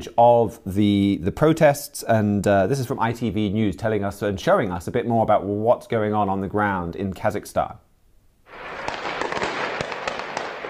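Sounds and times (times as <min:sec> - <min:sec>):
speech: 0:00.0 - 0:07.8
loud steady outdoor noise: 0:00.0 - 0:10.6
gunfire in the city of Almaty during protests: 0:08.5 - 0:10.6.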